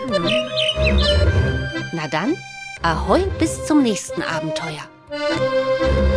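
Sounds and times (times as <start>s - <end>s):
seagull calls: 0.1s - 1.5s
speech: 2.0s - 6.0s.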